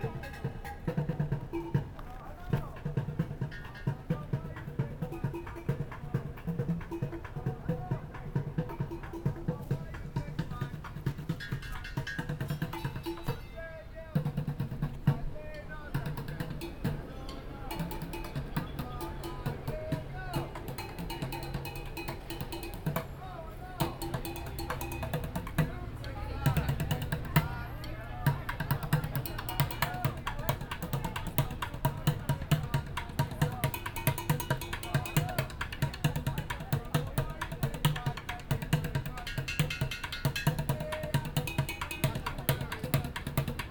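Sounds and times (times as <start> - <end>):
street drummer drumming on paint pots in San Francisco: 0.0 - 13.5, 14.2 - 43.7.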